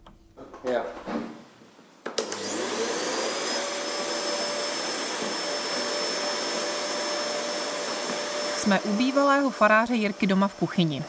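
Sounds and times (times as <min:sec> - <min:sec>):
speech: 0:00.6 - 0:01.1, 0:08.7 - 0:11.0
vacuum cleaner sucking up broken glass: 0:02.2 - 0:11.0.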